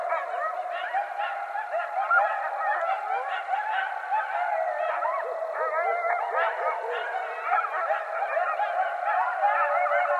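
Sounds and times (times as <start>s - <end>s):
coyotes yipping chorus: 0.0s - 10.1s.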